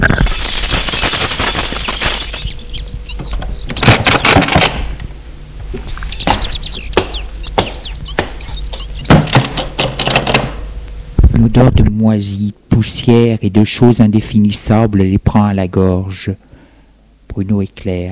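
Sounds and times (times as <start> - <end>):
front door scraping and creaking: 0.0 - 5.0, 6.0 - 10.7
low steady hum: 0.0 - 18.1
speech: 11.6 - 16.5, 17.4 - 18.1.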